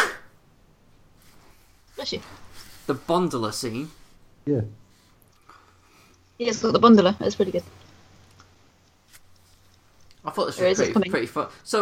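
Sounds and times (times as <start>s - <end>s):
sneeze: 0.0s - 0.4s
faint hiss: 0.0s - 11.8s
speech: 2.0s - 4.8s, 6.4s - 7.8s, 10.3s - 11.8s.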